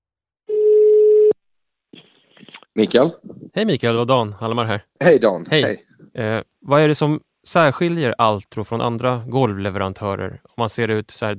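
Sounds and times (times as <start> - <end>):
telephone ringing tone on an outgoing call: 0.5 - 1.4
speech: 2.8 - 11.3.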